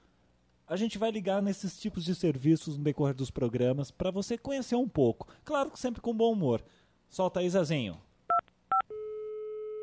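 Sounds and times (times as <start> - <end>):
speech: 0.7 - 8.1
long steady telephone line tone: 8.7 - 9.8.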